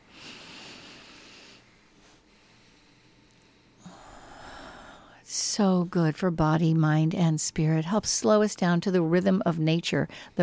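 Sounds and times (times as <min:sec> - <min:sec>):
slow deep breath during a guided relaxation moment: 0:00.0 - 0:05.2
speech: 0:05.6 - 0:10.4.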